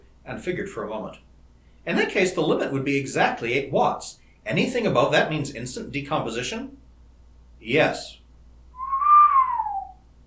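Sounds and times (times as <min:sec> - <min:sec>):
speech: 0:00.3 - 0:06.8, 0:07.6 - 0:08.2
long low human whistle: 0:08.8 - 0:10.0.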